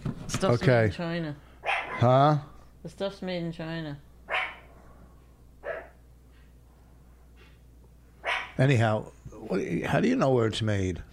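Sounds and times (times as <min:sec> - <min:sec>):
low hum: 0:00.0 - 0:11.1
speech: 0:00.3 - 0:04.1, 0:08.6 - 0:11.1
dog barking: 0:01.6 - 0:02.1, 0:04.3 - 0:04.7, 0:05.6 - 0:06.0, 0:08.2 - 0:08.6.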